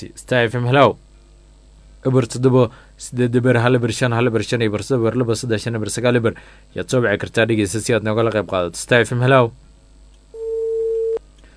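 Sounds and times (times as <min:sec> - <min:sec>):
speech: 0:00.0 - 0:01.0, 0:02.0 - 0:09.7
faint low hum: 0:00.0 - 0:11.5
telephone tone after a caller's line is cut off on a call-in line: 0:10.4 - 0:11.2.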